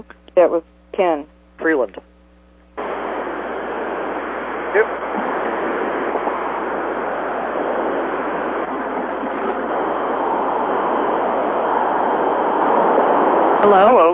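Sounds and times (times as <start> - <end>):
speech: 0.0 - 2.1, 4.7 - 5.2, 13.6 - 14.1
road noise inside a moving car over an open phone line: 2.8 - 14.1.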